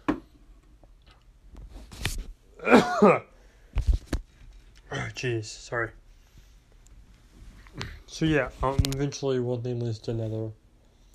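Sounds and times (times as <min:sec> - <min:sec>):
person coughing: 0:02.6 - 0:03.3
speech: 0:02.6 - 0:03.3, 0:05.2 - 0:06.0, 0:08.1 - 0:10.6.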